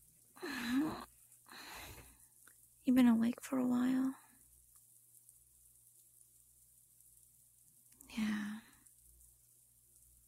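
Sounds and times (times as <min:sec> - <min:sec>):
rain falling: 0:00.0 - 0:10.2
speech: 0:02.9 - 0:04.2.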